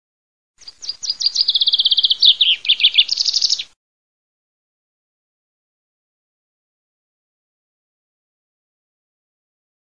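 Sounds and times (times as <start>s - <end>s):
chaffinch singing: 0.6s - 3.8s.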